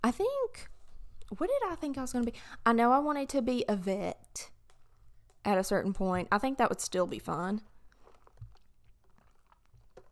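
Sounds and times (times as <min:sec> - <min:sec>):
speech: 0:00.1 - 0:00.7, 0:01.3 - 0:04.6, 0:05.4 - 0:07.7
sipping from a drink: 0:07.8 - 0:10.1
low swallowing thumps: 0:07.9 - 0:10.1.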